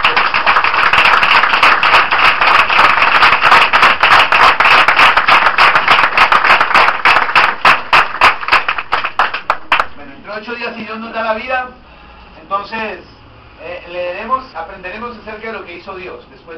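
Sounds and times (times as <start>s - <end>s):
congregation applause during a church service: 0.0s - 10.0s
speech: 12.6s - 13.1s, 13.9s - 16.5s.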